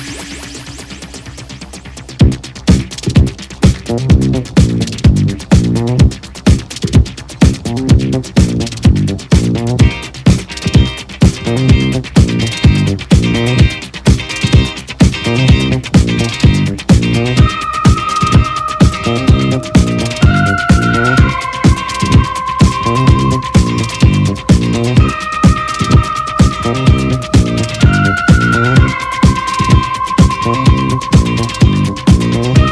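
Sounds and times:
bright electronic synth lines: 0:00.0 - 0:02.5, 0:15.3 - 0:32.7
1977 space disco instrumental groove: 0:00.0 - 0:32.7
pulsing synth bass: 0:00.0 - 0:32.7
shimmering high synth melody: 0:17.4 - 0:32.7.

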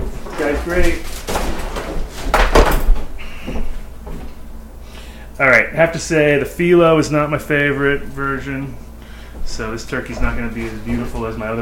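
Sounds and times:
kitchen items being slammed down while cooking: 0:00.0 - 0:03.2
speech: 0:00.4 - 0:01.2, 0:05.4 - 0:08.8, 0:09.5 - 0:11.6.

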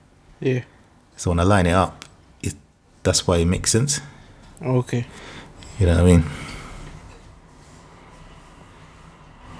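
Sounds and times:
speech: 0:00.4 - 0:06.4
train rumbling past: 0:07.8 - 0:09.5.

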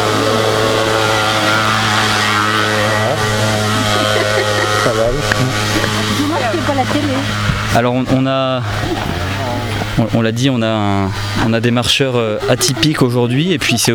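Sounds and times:
laughter: 0:00.0 - 0:07.3, 0:11.0 - 0:13.9
small moped engine droning on uphill road: 0:00.0 - 0:13.9
speech: 0:07.8 - 0:09.3, 0:10.0 - 0:13.9.

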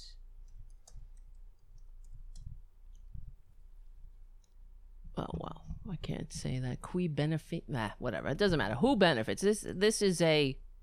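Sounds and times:
typing on a keyboard: 0:00.5 - 0:03.0
low thumping: 0:02.5 - 0:03.5, 0:05.1 - 0:06.8
speech: 0:05.2 - 0:10.6.

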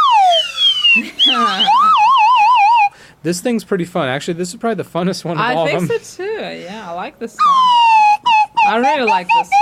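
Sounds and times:
toy trombone slide whistle: 0:00.0 - 0:02.9, 0:07.4 - 0:09.6
speech: 0:01.0 - 0:01.9, 0:03.2 - 0:08.0, 0:08.7 - 0:09.6.

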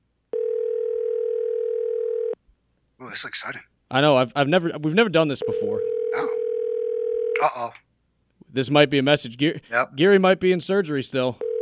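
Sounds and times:
telephone dial tone: 0:00.3 - 0:02.4, 0:05.5 - 0:07.3, 0:11.4 - 0:11.6
speech: 0:03.0 - 0:06.4, 0:07.4 - 0:07.8, 0:08.5 - 0:11.4.

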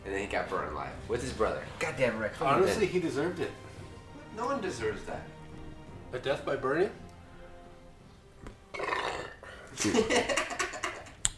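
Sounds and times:
speech: 0:00.3 - 0:03.7, 0:04.4 - 0:05.4, 0:06.1 - 0:07.0, 0:09.8 - 0:10.4
long rumbling burp: 0:08.7 - 0:09.6
laughter: 0:09.8 - 0:11.2.

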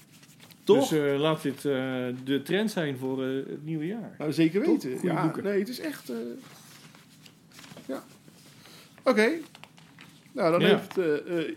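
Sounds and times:
papers rustling and shuffling: 0:00.0 - 0:03.1, 0:05.8 - 0:11.5
speech: 0:00.7 - 0:06.6, 0:07.9 - 0:08.1, 0:09.0 - 0:09.5, 0:10.4 - 0:11.5.

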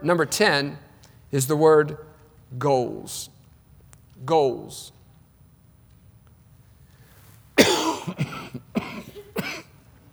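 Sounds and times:
speech: 0:00.0 - 0:03.3, 0:04.2 - 0:05.0
person coughing: 0:07.6 - 0:09.8.

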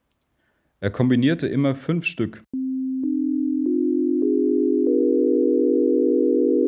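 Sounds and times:
speech: 0:00.8 - 0:02.6
pure electronic sine tones stacked as a chord: 0:02.6 - 0:06.6.

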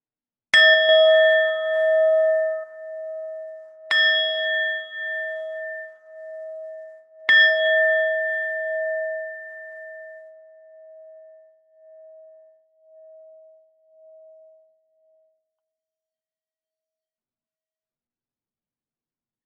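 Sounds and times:
meditation bell ringing at the close of a meditation: 0:00.6 - 0:14.8.

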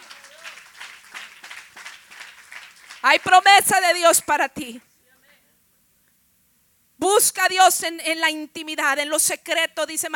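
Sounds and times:
congregation applauding with many hands clapping: 0:00.0 - 0:03.5
speech: 0:03.0 - 0:04.9, 0:07.0 - 0:10.1.

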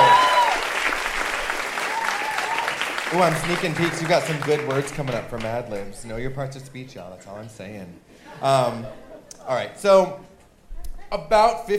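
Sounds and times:
crowd applause: 0:00.0 - 0:06.0
speech: 0:03.1 - 0:10.3, 0:11.1 - 0:11.7
laughter: 0:08.1 - 0:09.7.

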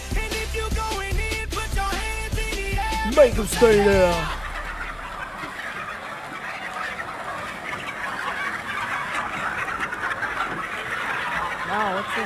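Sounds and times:
chickens clucking and squawking in a crowded hen house: 0:01.2 - 0:12.2
speech: 0:03.2 - 0:04.4.

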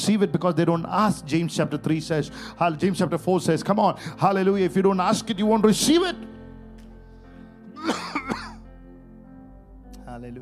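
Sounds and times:
speech: 0:00.0 - 0:06.4, 0:10.2 - 0:10.3
person coughing in the audience: 0:07.8 - 0:08.6.

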